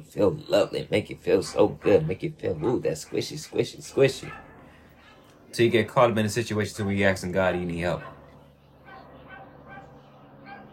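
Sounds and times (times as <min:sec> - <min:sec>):
speech: 0:00.0 - 0:04.4, 0:05.5 - 0:08.2
dog barking: 0:04.0 - 0:04.8, 0:07.9 - 0:10.7.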